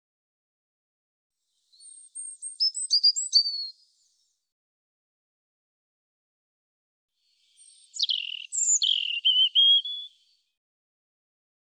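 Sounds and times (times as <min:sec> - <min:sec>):
European robin song: 0:01.7 - 0:04.3, 0:07.3 - 0:10.4.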